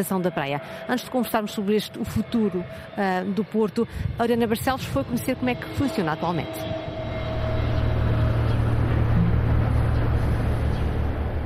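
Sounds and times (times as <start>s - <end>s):
speech: 0.0s - 6.9s
boat engine droning as the vessel maneuvers toward the quay at the port of Praia da Vitória: 0.0s - 11.4s.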